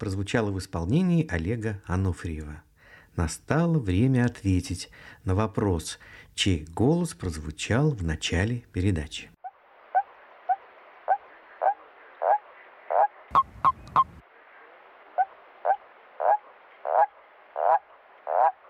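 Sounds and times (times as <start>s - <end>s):
speech: 0.0s - 9.3s
common toad croaking: 9.4s - 14.2s, 15.1s - 18.6s.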